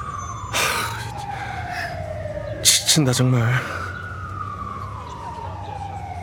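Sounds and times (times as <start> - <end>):
emergency vehicle siren wailing: 0.0 - 6.2
person muttering: 0.6 - 2.0, 2.6 - 3.2
speech: 2.9 - 3.8.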